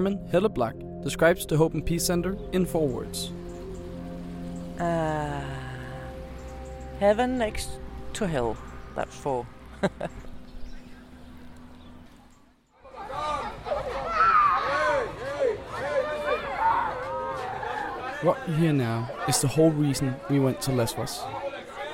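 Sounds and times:
speech: 0.0 - 3.4, 4.8 - 5.6, 7.0 - 10.2, 18.2 - 21.4
laughter: 9.7 - 10.3, 12.8 - 21.9
dense crowd chattering at Moria Refugee Camp: 12.8 - 21.9.

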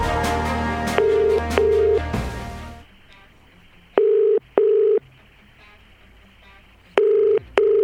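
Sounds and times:
faint steady hiss: 0.0 - 7.8
phone ringback tone double rings: 1.0 - 2.2, 4.0 - 5.0, 7.0 - 7.8.

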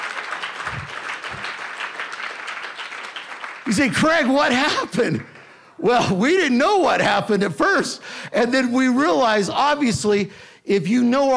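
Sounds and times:
crowd applauding in a large room: 0.0 - 5.6
speech: 3.7 - 11.3.

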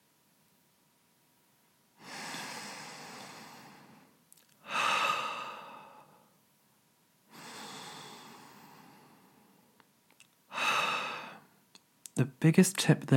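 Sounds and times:
person breathing in through the nose and out through the mouth: 2.0 - 6.4, 7.3 - 9.8, 10.5 - 11.6
speech: 12.2 - 13.1.

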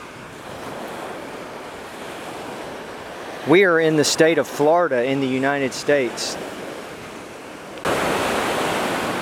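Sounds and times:
gusting wind: 0.0 - 9.2
ocean waves breaking on a Florida beach: 0.0 - 9.2
speech: 3.4 - 6.6.

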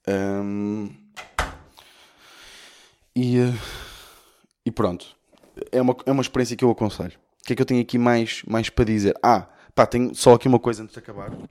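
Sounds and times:
speech: 0.0 - 0.6, 4.8 - 11.4
soft airy door creak and rustle: 1.1 - 1.8
door latch click: 1.2 - 1.7.

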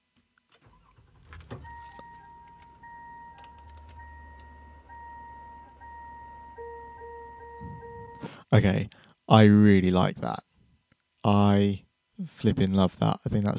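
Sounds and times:
car engine turning over and idling: 0.7 - 8.2
keys jangling: 1.2 - 4.5
steady electronic car door-open key chime: 1.6 - 8.3
speech: 8.5 - 10.5, 11.2 - 13.5.

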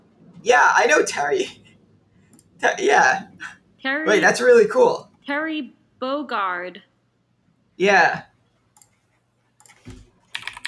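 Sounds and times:
speech: 0.4 - 1.6, 2.6 - 6.9, 7.8 - 8.3
typing on a computer keyboard: 9.6 - 10.6.

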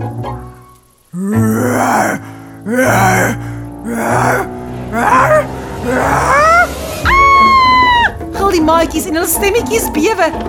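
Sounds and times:
person imitating the eerie howl of a big black wolf: 1.1 - 8.2
speech: 1.2 - 6.5, 8.5 - 10.4.

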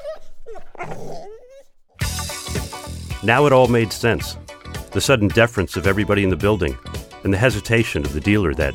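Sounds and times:
dogs whining and yelping in high sliding cries: 0.0 - 2.0
speech: 3.2 - 8.7.

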